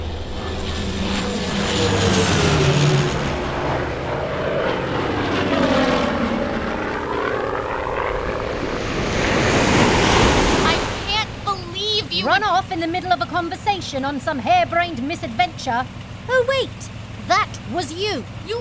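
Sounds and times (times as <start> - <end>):
propeller plane engine droning while landing on water: 0.0 - 18.5
waves splashing beneath a landing plane: 1.1 - 18.5
rushing spray beneath a landing plane: 8.2 - 12.2
speech: 12.4 - 18.5.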